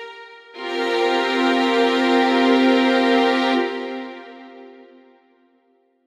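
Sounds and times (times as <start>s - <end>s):
strings playing a sus4 chord: 0.6s - 5.0s.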